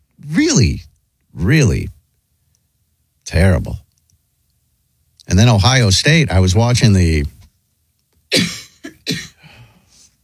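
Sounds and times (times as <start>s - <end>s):
speech: 0.6s - 0.9s, 1.5s - 2.0s, 3.3s - 3.8s, 5.3s - 7.4s, 8.3s - 9.2s
woman coughing: 8.3s - 9.5s
faint wheezy breath: 9.4s - 10.2s.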